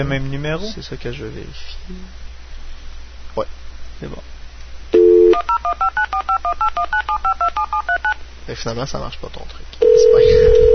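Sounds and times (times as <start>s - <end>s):
speech: 0.0s - 2.3s, 3.4s - 4.3s, 8.5s - 10.7s
telephone keypad dialing beeps: 5.0s - 8.2s.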